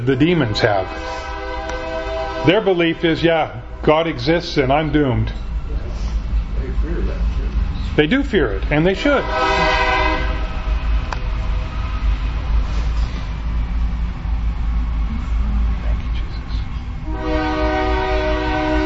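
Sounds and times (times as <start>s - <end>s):
speech: 0.0s - 1.3s, 2.4s - 5.5s, 8.0s - 9.8s
train horn blaring: 0.0s - 5.0s, 8.9s - 10.9s, 17.0s - 18.8s
train rumbling past: 0.0s - 18.8s.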